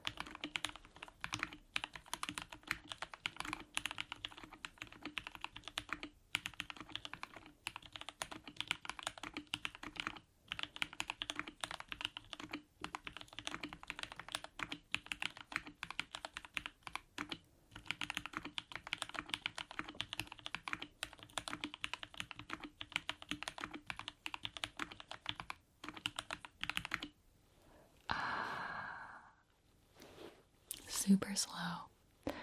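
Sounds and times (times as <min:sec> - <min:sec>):
slow typing on a computer keyboard: 0:00.0 - 0:27.2
soft exhale: 0:27.6 - 0:30.4
speech: 0:31.1 - 0:31.9.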